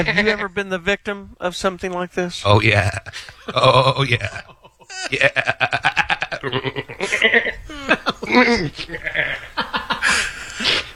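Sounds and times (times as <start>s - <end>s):
laughter: 0.0s - 0.6s, 2.4s - 10.9s
speech: 0.0s - 10.8s
person imitating goat bleats and screams: 2.5s - 5.3s.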